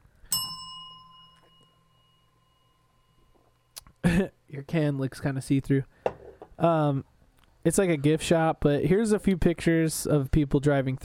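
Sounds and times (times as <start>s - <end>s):
bright bell strike ringing: 0.3s - 3.7s
speech: 4.2s - 6.0s, 6.6s - 11.0s.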